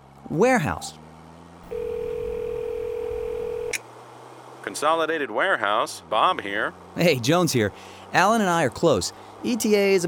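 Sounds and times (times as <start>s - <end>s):
speech: 0.3s - 1.0s, 4.7s - 10.0s
low rumble: 1.6s - 3.8s
steady clear telephone tone of a speakerphone: 1.7s - 3.8s.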